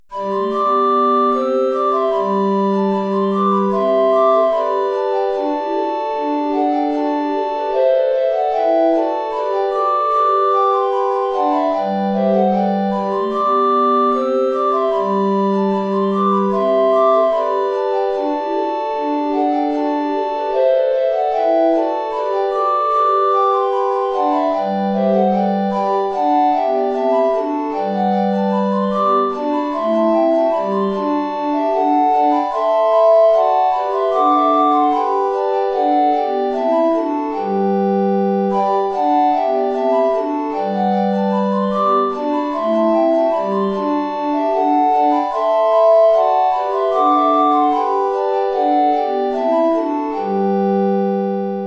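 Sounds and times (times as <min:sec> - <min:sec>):
four recorders playing a ballet piece: 0:00.1 - 0:51.6.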